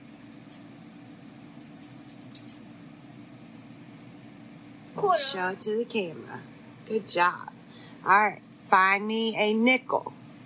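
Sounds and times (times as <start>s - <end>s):
coins clinking and rattling as a child sorts through a pile in a living room: 1.6s - 2.6s
speech: 5.0s - 10.2s.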